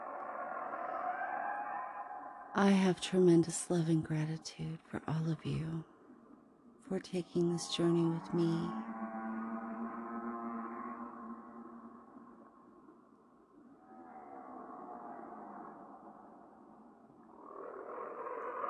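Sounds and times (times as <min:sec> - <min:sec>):
whale song: 0:00.0 - 0:02.6, 0:07.2 - 0:18.6
speech: 0:02.5 - 0:05.9, 0:06.9 - 0:08.9.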